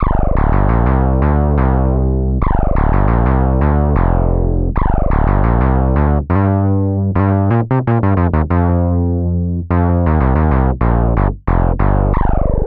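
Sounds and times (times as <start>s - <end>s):
funk music with feedback: 0.0s - 12.6s.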